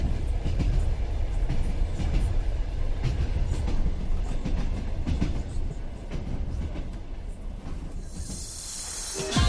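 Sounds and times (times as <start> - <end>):
train wheels rumbling and rattling on rails inside a carriage: 0.0 - 9.4
rising hiss: 8.0 - 9.4.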